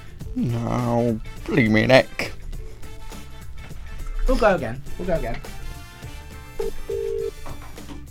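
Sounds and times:
speech: 0:00.4 - 0:02.4, 0:04.3 - 0:05.6
phone line ringback tone on an outgoing call: 0:06.6 - 0:07.4.

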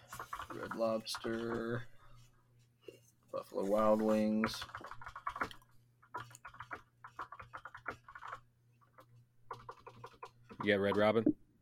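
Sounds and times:
typing on a keyboard: 0:00.0 - 0:01.7, 0:04.4 - 0:11.1
speech: 0:00.5 - 0:01.9, 0:03.3 - 0:05.6, 0:10.6 - 0:11.4.

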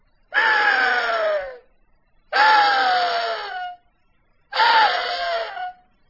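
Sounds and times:
rutting axis deer buck screams imitated on a latex reed call: 0:00.3 - 0:01.6, 0:02.3 - 0:03.8, 0:04.5 - 0:05.8.

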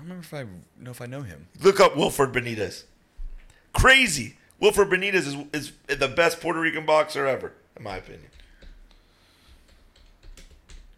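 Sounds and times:
speech: 0:00.1 - 0:03.0, 0:03.7 - 0:08.4
typing on a computer keyboard: 0:08.2 - 0:10.9.

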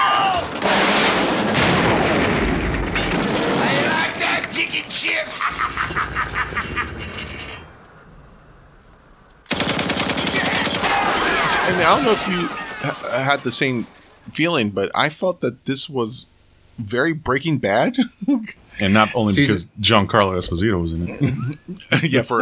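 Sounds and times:
people shouting: 0:00.0 - 0:00.6, 0:10.2 - 0:14.0
rapid gunfire in a diner shootout scene: 0:00.4 - 0:04.4, 0:09.5 - 0:14.1
laughter: 0:05.1 - 0:07.2, 0:10.9 - 0:13.9, 0:17.8 - 0:19.6, 0:21.0 - 0:22.4
speech: 0:11.9 - 0:22.4.

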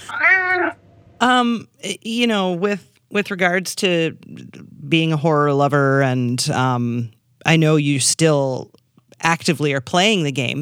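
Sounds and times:
cat meowing: 0:00.0 - 0:00.8
speech: 0:01.2 - 0:10.6.

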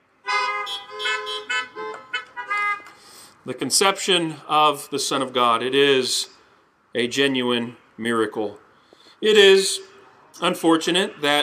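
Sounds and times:
car horns honking: 0:00.1 - 0:03.3
speech: 0:03.4 - 0:06.3, 0:06.9 - 0:08.6, 0:09.2 - 0:11.4.

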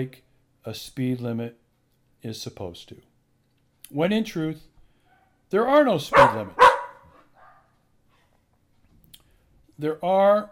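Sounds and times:
speech: 0:00.0 - 0:01.6, 0:02.2 - 0:03.1, 0:03.9 - 0:04.7, 0:05.5 - 0:06.7, 0:09.8 - 0:10.4
dog barking: 0:06.1 - 0:07.7.

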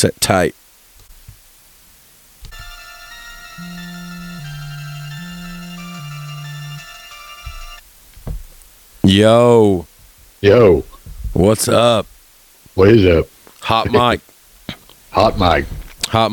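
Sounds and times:
speech: 0:00.0 - 0:00.6, 0:09.1 - 0:12.1, 0:12.8 - 0:14.3, 0:15.2 - 0:16.3
phone ringback tone while placing a call: 0:02.5 - 0:07.8.

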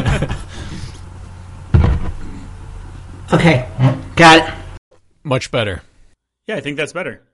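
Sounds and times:
door shutting with a solid thud: 0:01.7 - 0:02.2
speech: 0:03.3 - 0:04.6, 0:05.2 - 0:05.9, 0:06.5 - 0:07.3.

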